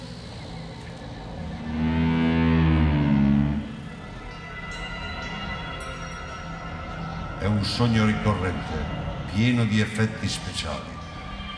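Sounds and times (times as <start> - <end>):
cattle lowing: 1.1 - 4.0
cow mooing: 1.5 - 4.0
speech: 7.5 - 10.9.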